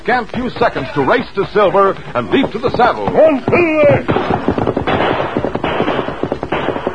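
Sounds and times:
speech: 0.0s - 5.4s
gang firing rapid gunfire in a canyon: 2.4s - 6.9s.

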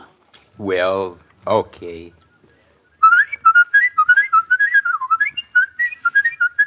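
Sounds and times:
speech: 0.6s - 2.2s
man whistling a lively ornamented melody with quick trills: 2.1s - 6.6s.

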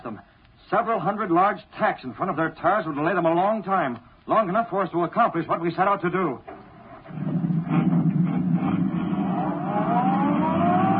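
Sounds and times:
speech: 0.1s - 6.5s
sedan engine accelerating along a concrete road: 6.8s - 10.9s.

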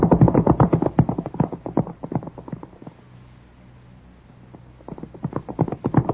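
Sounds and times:
hooves of several galloping horses with riders: 0.0s - 2.9s, 4.8s - 6.1s.

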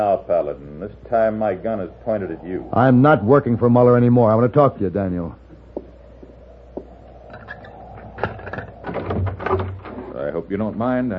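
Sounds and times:
speech: 0.0s - 5.4s, 10.5s - 11.1s
door pulled open with rattling scraping creak: 7.2s - 10.2s.

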